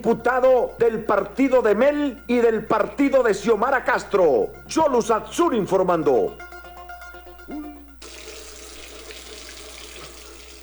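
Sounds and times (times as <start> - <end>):
speech: 0.0 - 6.5
brief tonal sound: 6.3 - 8.0
running water from a sink faucet: 7.8 - 10.6.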